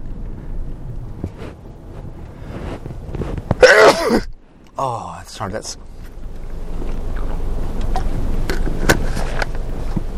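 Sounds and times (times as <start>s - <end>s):
low rumble: 0.0s - 10.1s
quiet breathing: 1.4s - 3.0s
loud sneeze: 3.6s - 4.3s
speech: 4.8s - 6.0s.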